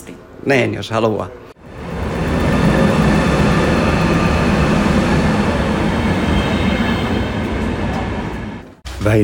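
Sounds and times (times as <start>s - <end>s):
speech: 0.4s - 1.4s, 9.0s - 9.2s
passenger train rumbling along rails on the rail connection to Haparanda: 1.6s - 8.8s.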